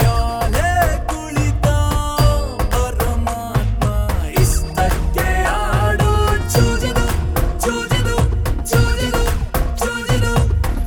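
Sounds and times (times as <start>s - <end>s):
bhangra music: 0.0s - 10.8s.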